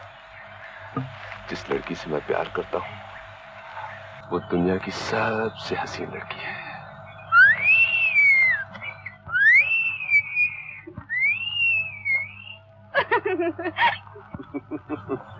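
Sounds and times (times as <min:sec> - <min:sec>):
low hum: 0:00.0 - 0:15.3
speech: 0:01.0 - 0:03.1, 0:04.3 - 0:06.6
person whistling rising-and-falling phrases and chirpy notes: 0:07.3 - 0:12.6
laughter: 0:12.9 - 0:15.3.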